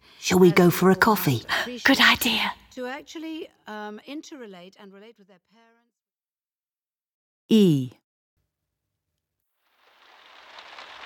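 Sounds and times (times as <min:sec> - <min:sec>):
speech: 0:00.3 - 0:05.9, 0:07.5 - 0:08.0
steady rain falling: 0:09.6 - 0:11.0.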